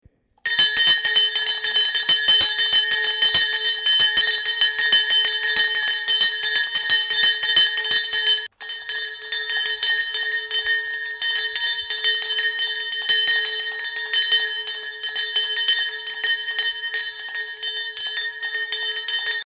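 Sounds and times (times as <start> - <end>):
stock exchange bell in Vienna: 0.5 - 19.4.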